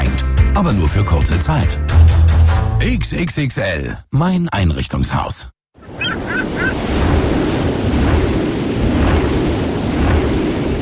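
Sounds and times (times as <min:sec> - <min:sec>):
speech: 0:00.6 - 0:02.2, 0:02.8 - 0:05.6
strong wind roaring over the open Baltic Sea at an offshore wind farm: 0:05.8 - 0:10.7
surf and rushing water of the Baltic Sea: 0:05.8 - 0:10.7.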